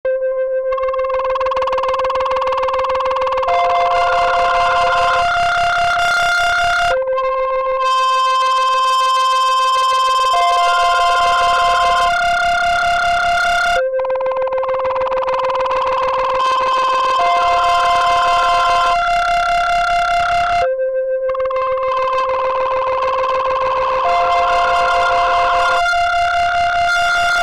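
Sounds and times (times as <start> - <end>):
overdriven synth melody played via MIDI: 0.1 - 27.4.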